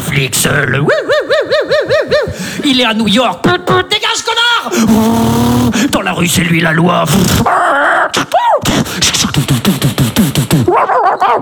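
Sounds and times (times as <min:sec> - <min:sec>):
speech: 0:00.2 - 0:11.3
laughter: 0:00.5 - 0:03.9, 0:04.6 - 0:06.0, 0:07.1 - 0:11.3
dog barking and yelping: 0:10.7 - 0:11.3.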